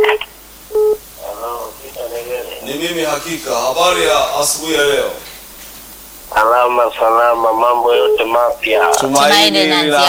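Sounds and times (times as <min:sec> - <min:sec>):
voice on a telephone line: 0:00.0 - 0:00.3, 0:01.2 - 0:02.8, 0:06.3 - 0:10.0
two short electronic dial tones of an incoming telephone call on a radio phone-in line: 0:00.0 - 0:01.0
speech: 0:02.8 - 0:05.3, 0:06.3 - 0:10.0.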